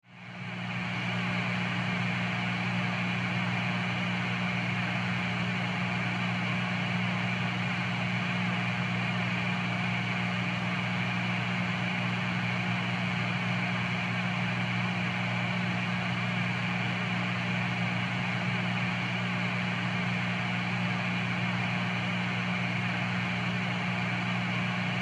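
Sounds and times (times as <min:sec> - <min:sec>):
guitar amp hum: 0:00.4 - 0:25.0.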